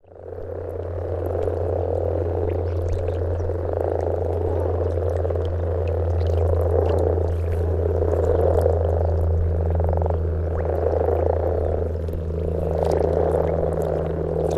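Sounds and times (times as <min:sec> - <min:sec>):
common frog chorus croaking: 0:00.0 - 0:14.5
constant deep hum: 0:00.0 - 0:14.5.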